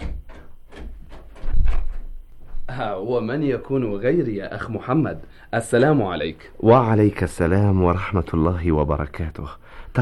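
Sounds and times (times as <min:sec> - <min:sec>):
door opening as a visitor enters: 0:00.0 - 0:02.9
speech: 0:02.7 - 0:10.0.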